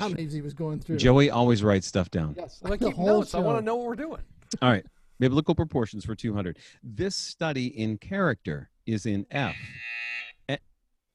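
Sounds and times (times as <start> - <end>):
speech: 0.0 - 10.7
quiz game buzzer: 9.5 - 10.4.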